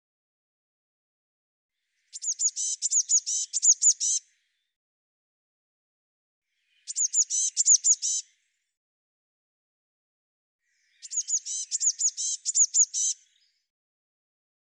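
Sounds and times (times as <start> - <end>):
Eurasian blue tit calls: 1.9 - 4.6, 6.6 - 8.5, 10.7 - 13.6.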